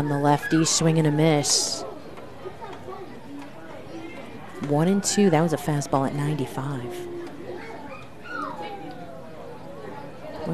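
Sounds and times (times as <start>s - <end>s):
several dogs yipping and whining: 0.0s - 1.1s, 7.2s - 10.1s
speech: 0.0s - 1.9s, 4.6s - 7.1s
murmur of voices and crowd noise: 0.0s - 10.5s.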